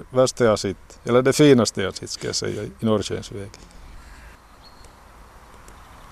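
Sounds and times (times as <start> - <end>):
birds calling outdoors: 0.0 - 6.1
speech: 0.1 - 3.8
crows cawing: 3.6 - 4.4.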